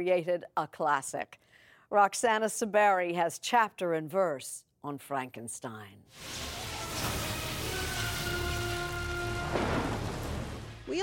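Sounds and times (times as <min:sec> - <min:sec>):
speech: 0:00.0 - 0:07.1, 0:10.9 - 0:11.0
steady rain hissing: 0:06.2 - 0:10.9
low rumbling: 0:06.2 - 0:11.0
sharp crack of thunder with rolling tail: 0:06.2 - 0:11.0.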